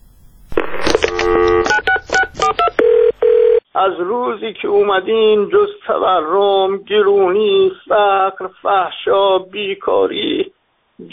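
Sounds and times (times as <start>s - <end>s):
short distinct keypad-like pips: 0.6s - 2.8s
steady electronic telephone beep: 0.6s - 3.6s
speech: 3.8s - 11.1s.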